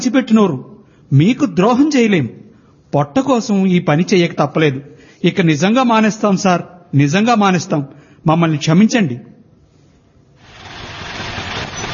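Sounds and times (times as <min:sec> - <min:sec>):
speech: 0:00.0 - 0:09.3
auto rickshaw engine approaching on a road: 0:10.4 - 0:11.9.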